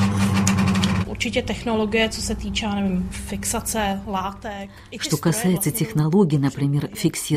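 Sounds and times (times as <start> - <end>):
sewing machine running in a tailoring salon: 0.0 - 1.1
speech: 1.2 - 7.3.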